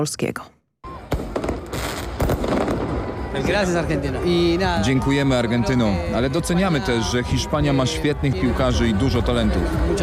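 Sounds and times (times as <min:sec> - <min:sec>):
speech: 0:00.0 - 0:00.6, 0:03.4 - 0:10.0
faint crowd noise and voices: 0:00.8 - 0:10.0
fireworks set off by football fans celebrating after the final: 0:01.1 - 0:04.3.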